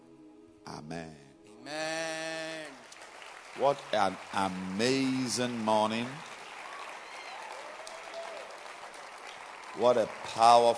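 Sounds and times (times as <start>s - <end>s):
speech: 0.7s - 2.0s, 3.6s - 6.3s, 9.8s - 10.7s
large gathering applauding: 2.5s - 10.7s.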